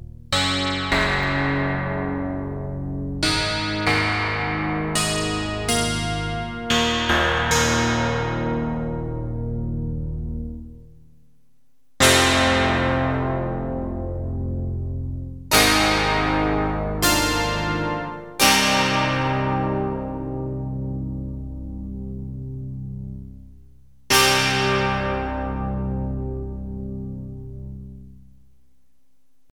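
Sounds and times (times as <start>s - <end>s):
PPG synthesizer keys playing: 0.3s - 10.5s, 12.0s - 21.8s, 24.1s - 27.7s.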